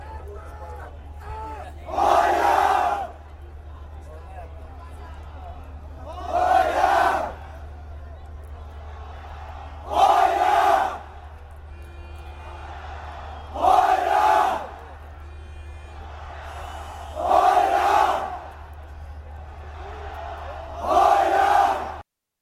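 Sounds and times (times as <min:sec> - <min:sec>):
football crowd chanting: 0:01.7 - 0:03.3, 0:05.7 - 0:07.7, 0:08.4 - 0:22.0.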